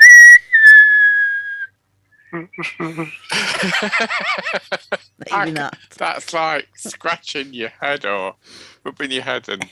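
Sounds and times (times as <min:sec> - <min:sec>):
person whistling while breathing in: 0:00.0 - 0:01.7
speech: 0:02.3 - 0:09.7
people laughing: 0:02.6 - 0:05.1.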